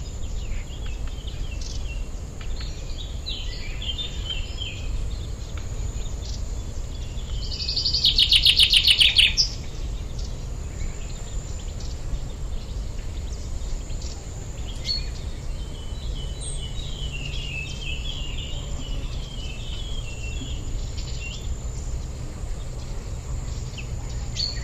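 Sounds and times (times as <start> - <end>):
common chaffinch Fringilla coelebs singing: 0.0 - 24.6
faint birds: 0.0 - 24.6
low rumbling background noise: 0.0 - 24.6.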